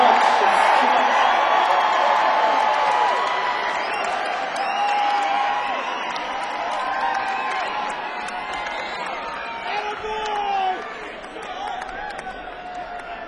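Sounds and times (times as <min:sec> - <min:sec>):
audience clapping: 0:00.0 - 0:13.2
crowd whooping cheers: 0:00.0 - 0:13.2.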